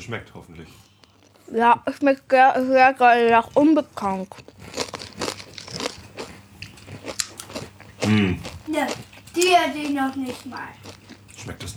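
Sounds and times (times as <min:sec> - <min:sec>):
speech: 0:00.0 - 0:00.9, 0:01.5 - 0:04.8, 0:08.1 - 0:10.8, 0:11.4 - 0:11.7
crunching and chewing of potato chips: 0:03.4 - 0:11.6.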